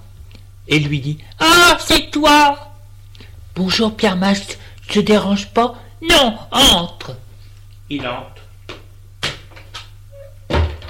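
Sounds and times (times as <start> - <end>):
low steady hum: 0.0 - 10.8
speech: 0.7 - 2.7, 3.6 - 7.2, 7.9 - 8.4
door closing with a solid thunk as an old man shuts it: 10.5 - 10.8.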